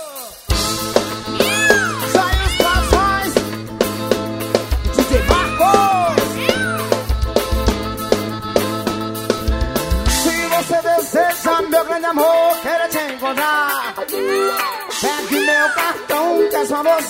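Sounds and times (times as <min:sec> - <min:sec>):
busy percussion: 0:00.0 - 0:17.0
steady bass line: 0:00.5 - 0:12.7
forró band accordion: 0:00.5 - 0:17.0
sliding meow-like vocal cries: 0:01.2 - 0:03.6, 0:04.9 - 0:07.1.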